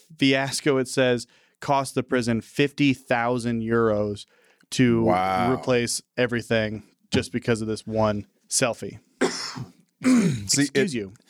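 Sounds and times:
speech: 0:00.1 - 0:11.2
person coughing: 0:09.2 - 0:10.9.

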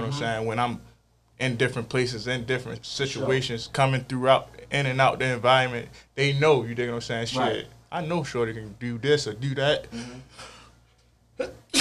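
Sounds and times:
speech: 0:00.1 - 0:10.5, 0:11.4 - 0:11.7
soft breathy inhale before a sneeze: 0:09.9 - 0:10.8
person sneezing: 0:11.4 - 0:11.7.

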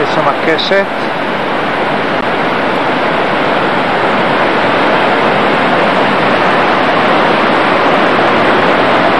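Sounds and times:
rushing, foaming water of a waterfall: 0:00.0 - 0:09.1
speech: 0:00.2 - 0:01.1.

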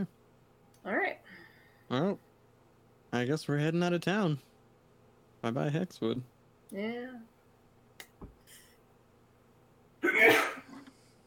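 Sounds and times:
speech: 0:01.9 - 0:02.2, 0:03.1 - 0:04.5, 0:05.4 - 0:07.3
loud sneeze with breathy tail: 0:10.0 - 0:10.8.

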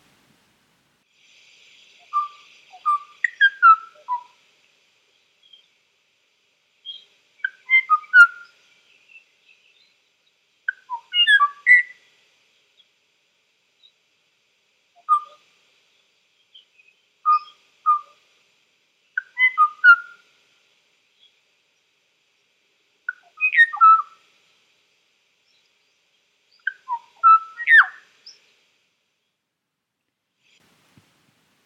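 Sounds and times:
Kauai oo honeyeater singing flute-like whistled phrases: 0:01.9 - 0:04.4, 0:06.8 - 0:10.0, 0:10.7 - 0:12.1, 0:15.0 - 0:15.4, 0:16.4 - 0:18.2, 0:19.1 - 0:20.2, 0:23.1 - 0:24.3, 0:25.4 - 0:28.5.

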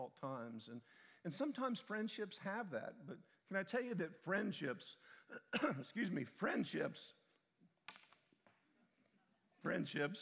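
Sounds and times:
speech: 0:00.0 - 0:07.2, 0:09.6 - 0:10.2
person coughing: 0:05.3 - 0:05.8
throat clearing: 0:05.3 - 0:05.8.

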